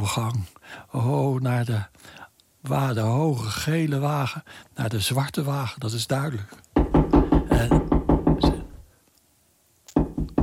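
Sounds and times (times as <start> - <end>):
speech: 0.1 - 6.6
knocking, possibly from the ground or behind a door: 6.8 - 8.8, 10.0 - 10.4.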